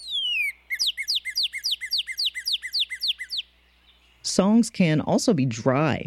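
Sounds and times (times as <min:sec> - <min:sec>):
northern cardinal song with clear whistles: 0:00.0 - 0:04.0
speech: 0:04.4 - 0:06.0.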